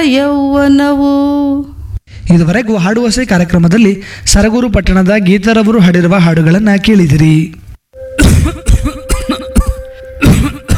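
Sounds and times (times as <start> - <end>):
speech: 0.0 - 1.7, 2.3 - 7.6
man's deep persistent chesty cough: 8.2 - 10.7.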